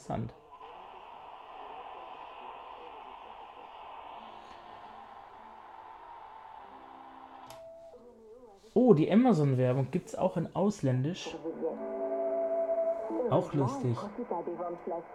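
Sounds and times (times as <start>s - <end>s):
Sony shortwave world receiver static hiss: 0.0s - 10.4s, 11.2s - 15.1s
speech: 0.1s - 0.4s, 8.8s - 11.8s, 13.2s - 15.1s
wavering sliding whistles from shortwave tuning: 0.4s - 8.8s, 11.8s - 13.3s.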